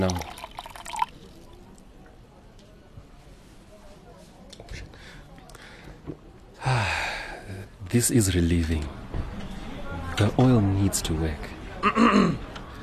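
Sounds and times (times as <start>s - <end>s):
speech: 0.0s - 0.3s, 8.0s - 9.0s, 10.2s - 12.5s
cold water pouring into a cup: 0.0s - 1.8s
faint breathing: 4.8s - 7.6s.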